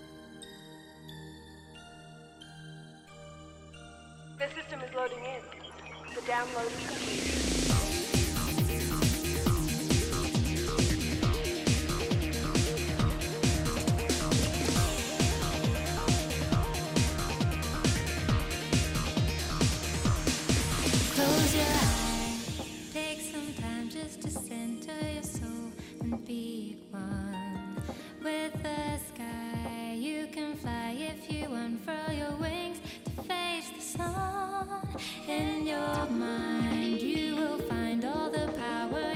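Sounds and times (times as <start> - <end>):
speech: 4.4 - 7.5
upbeat video game theme song with English vocals: 4.4 - 39.1
steady driving beat: 6.2 - 24.5.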